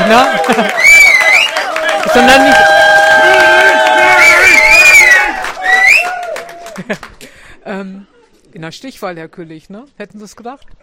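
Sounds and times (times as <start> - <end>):
crowd cheering: 0.0 - 7.1
speech: 0.1 - 0.9, 2.0 - 2.7, 8.6 - 10.8
many voices whooping and shouting together: 0.1 - 6.8
scattered yells: 2.3 - 6.4.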